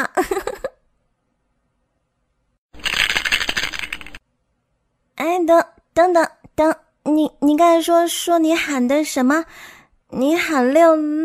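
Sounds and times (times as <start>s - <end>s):
dice rattling in a shaker cup: 2.8s - 4.2s
speech: 5.4s - 11.2s.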